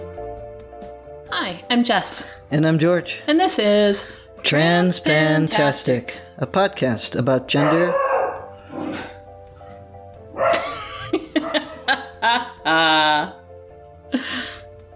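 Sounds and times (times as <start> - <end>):
speech: 1.3 - 8.0
dog barking and yapping: 7.6 - 9.2, 10.3 - 10.7, 11.4 - 12.0
dog whining bark: 7.6 - 9.2, 10.4 - 10.7
laughter: 10.5 - 13.4.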